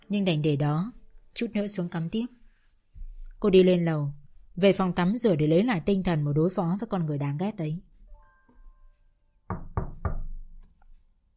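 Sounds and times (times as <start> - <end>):
speech: 0.1 - 2.4, 3.4 - 7.9
hard knocking on a door: 9.5 - 10.5.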